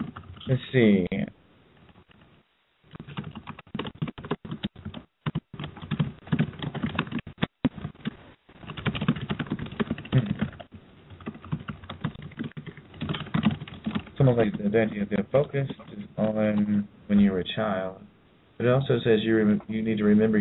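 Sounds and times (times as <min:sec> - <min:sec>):
rapid keystrokes on a keyboard: 0:00.0 - 0:00.5, 0:02.9 - 0:16.7
speech: 0:00.5 - 0:01.4, 0:14.3 - 0:20.3.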